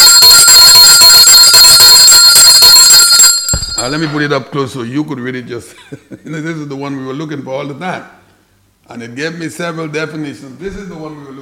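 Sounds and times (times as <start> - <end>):
hand bell ringing: 0.0 - 4.5
speech: 3.8 - 8.2, 9.0 - 11.4.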